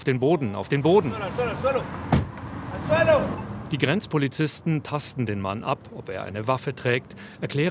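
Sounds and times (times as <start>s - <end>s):
speech: 0.0s - 2.1s, 2.9s - 7.6s
SUV car door slam: 2.0s - 2.4s.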